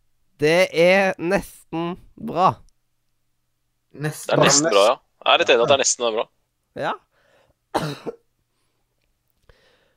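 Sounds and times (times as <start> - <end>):
faint low noise: 0.0 - 9.9
speech: 0.4 - 2.7, 3.9 - 7.0, 7.7 - 8.2
ill person coughing during a broadcast: 7.8 - 8.3.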